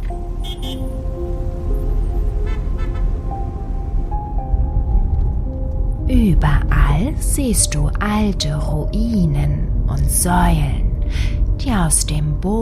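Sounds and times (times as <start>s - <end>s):
car horns honking in short overlapping toots: 0.0s - 1.2s, 2.2s - 3.5s
busy street traffic rumble: 0.0s - 12.6s
speech: 6.4s - 12.6s.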